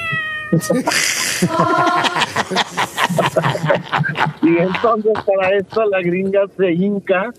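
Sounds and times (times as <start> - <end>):
person mimicking a drawn-out whiny cat meow: 0.0 - 0.8
speech: 0.5 - 7.3
person chuckling: 0.6 - 6.0.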